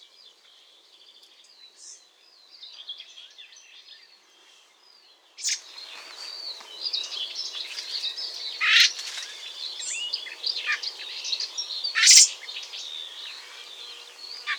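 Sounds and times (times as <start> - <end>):
high chirping birds: 0.2 - 14.5
Eurasian blackbird Turdus merula giving loud rasping call: 8.4 - 14.5.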